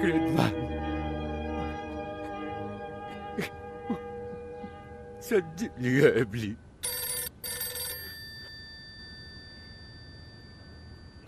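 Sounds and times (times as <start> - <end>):
speech: 0.0 - 0.7, 3.4 - 4.1, 5.2 - 7.0
low hum: 0.0 - 11.2
telephone bell ringing: 6.8 - 11.2.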